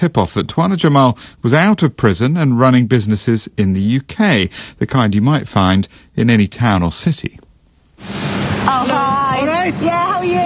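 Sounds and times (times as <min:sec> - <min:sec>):
speech: 0:00.0 - 0:07.4, 0:08.0 - 0:10.4
pressurised water spraying at a car wash in the north of England: 0:08.0 - 0:09.2.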